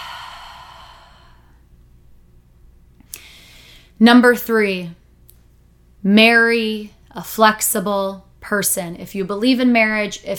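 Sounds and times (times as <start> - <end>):
deep lower belly breath inhale and exhale: 0.0 - 1.6
speech: 4.0 - 5.0, 6.0 - 10.3.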